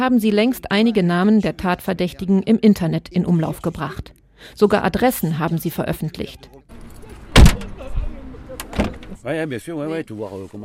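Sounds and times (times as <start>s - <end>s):
speech: 0.0s - 6.6s, 9.2s - 10.6s
faint taxi vehicle and cabin rustling: 6.8s - 9.2s
black taxi van door slamming shut heavily in La Monnaie: 7.2s - 8.0s, 8.6s - 9.2s
second softer thump from taxi van: 7.4s - 7.8s.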